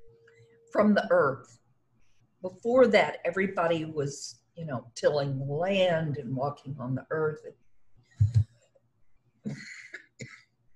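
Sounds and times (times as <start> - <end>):
speech: 0.7 - 1.6, 2.4 - 7.6, 9.4 - 9.8
person coughing harshly: 9.5 - 10.5.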